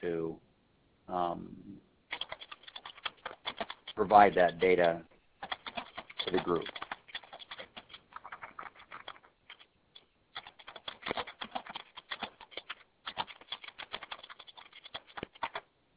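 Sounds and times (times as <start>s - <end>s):
typing on a keyboard: 2.1s - 9.7s, 10.4s - 15.7s
speech: 4.0s - 5.1s, 6.3s - 6.8s.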